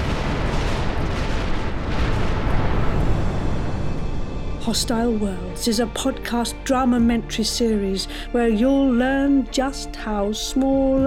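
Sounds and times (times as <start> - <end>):
exploding star blast as loud continuous roaring rumble: 0.0 - 4.6
speech: 4.7 - 11.0.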